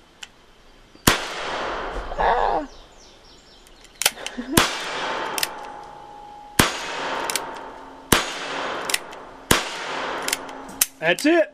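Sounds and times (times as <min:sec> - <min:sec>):
gunshots during cowboy-themed target shooting: 0:01.1 - 0:02.2, 0:04.5 - 0:05.7, 0:06.6 - 0:11.1
speech: 0:04.4 - 0:04.6, 0:11.0 - 0:11.5.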